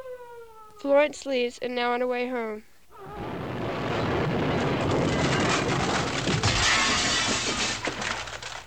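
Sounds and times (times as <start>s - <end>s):
speech: 0.8s - 2.7s
loud car crash: 3.0s - 8.6s
debris clattering from a car crash: 3.1s - 8.6s
glass shattering in a car crash: 3.7s - 8.6s.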